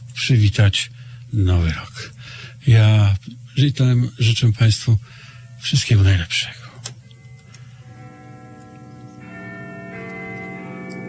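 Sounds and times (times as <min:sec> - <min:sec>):
speech: 0:00.3 - 0:06.7
clock chiming midnight with deep ringing bell tones: 0:07.0 - 0:11.0.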